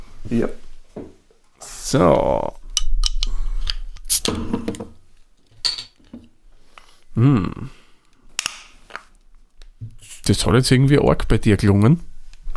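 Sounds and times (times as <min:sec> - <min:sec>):
speech: 0:00.3 - 0:00.7, 0:01.9 - 0:02.6, 0:04.2 - 0:04.6, 0:10.3 - 0:12.1
beer bottle pried open with a lighter: 0:03.7 - 0:04.4
person murmuring: 0:07.2 - 0:07.7.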